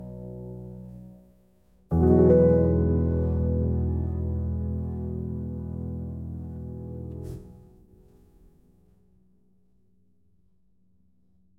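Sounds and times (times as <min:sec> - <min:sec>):
piano logo: 0:01.9 - 0:08.8.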